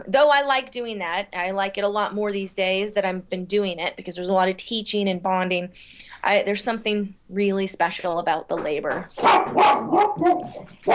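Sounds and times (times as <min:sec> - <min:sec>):
speech: 0:00.0 - 0:10.9
dogs barking: 0:09.2 - 0:10.9.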